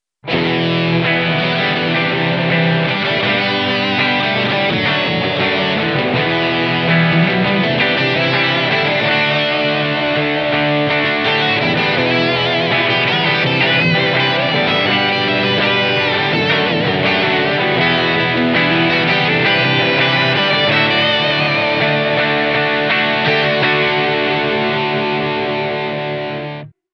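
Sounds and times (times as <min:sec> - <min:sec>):
guitar effect pedal sound: 0:00.2 - 0:26.8.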